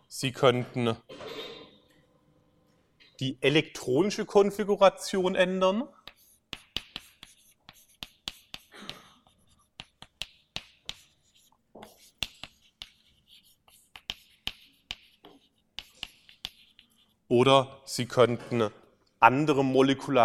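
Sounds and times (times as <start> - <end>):
speech: 0.1 - 1.2, 3.2 - 6.0, 17.4 - 20.2
handwriting on a surface: 6.0 - 17.3.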